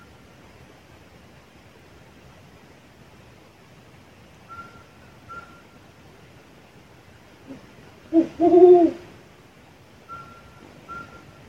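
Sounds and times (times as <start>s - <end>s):
thin steady whistled tones in the background: 4.5s - 5.8s
brown wood owl Strix leptogrammica hooting: 7.5s - 9.1s.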